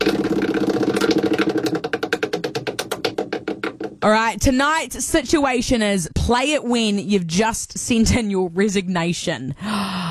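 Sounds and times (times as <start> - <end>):
spinning prize wheel sound effect: 0.0 - 3.6
speech: 4.0 - 10.0.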